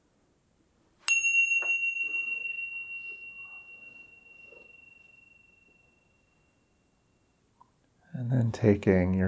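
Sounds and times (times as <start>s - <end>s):
meditation bell ringing at the close of a practice: 1.1s - 7.5s
speech: 8.3s - 9.2s.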